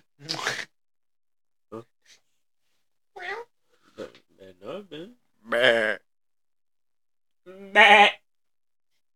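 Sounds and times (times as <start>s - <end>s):
goats bleating: 7.7s - 8.2s.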